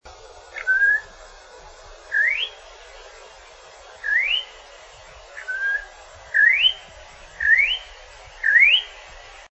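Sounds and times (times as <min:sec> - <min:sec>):
campo troupial whistling: 0:00.6 - 0:01.1, 0:02.1 - 0:02.6, 0:04.0 - 0:04.6, 0:05.4 - 0:09.0.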